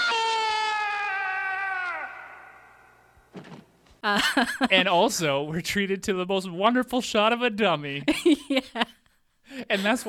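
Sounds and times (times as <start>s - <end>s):
Wilhelm-style scream of a falling man: 0.0s - 2.8s
brief dull thump: 3.3s - 3.8s
speech: 4.0s - 9.0s, 9.7s - 10.0s.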